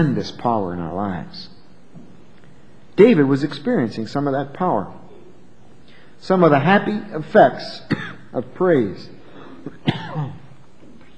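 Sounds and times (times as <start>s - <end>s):
speech: 0.0s - 1.5s, 3.0s - 5.0s, 6.2s - 10.4s
person coughing from a tickle in the throat: 7.9s - 8.3s, 9.4s - 10.5s.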